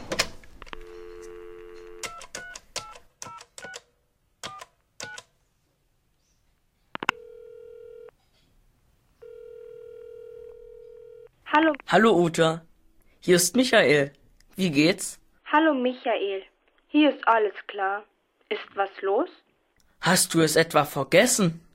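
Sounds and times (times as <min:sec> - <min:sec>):
long steady electronic telephone ringing tones: 0:00.7 - 0:03.0, 0:07.0 - 0:08.2, 0:09.2 - 0:11.3
telephone keypad tones: 0:00.7 - 0:03.8, 0:07.0 - 0:08.1, 0:09.2 - 0:11.3
speech: 0:11.6 - 0:19.4, 0:20.0 - 0:21.7.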